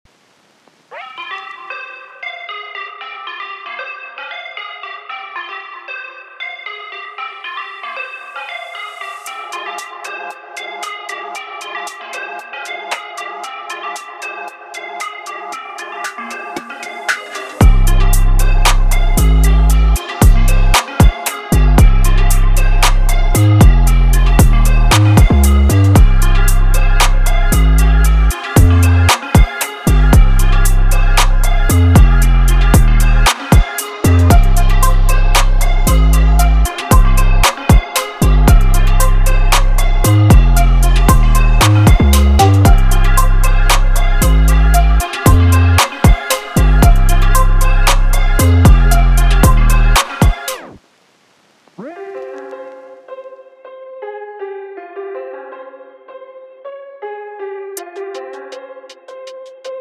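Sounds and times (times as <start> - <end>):
trap music: 1.0 - 50.8.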